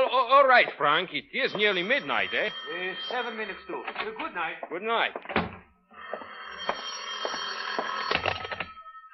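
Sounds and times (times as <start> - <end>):
speech: 0.4 - 5.5
old-fashioned telephone bell ringing: 1.4 - 4.4, 5.9 - 9.1.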